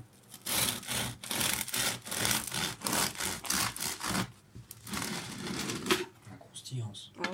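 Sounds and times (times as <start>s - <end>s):
knife sawing through a crusty bread loaf: 0.3s - 5.9s.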